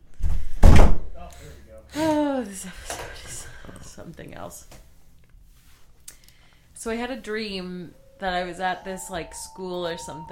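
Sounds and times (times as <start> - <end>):
loose unlatched door banging shut: 0.6 - 1.0
speech: 1.9 - 4.8, 6.8 - 10.3.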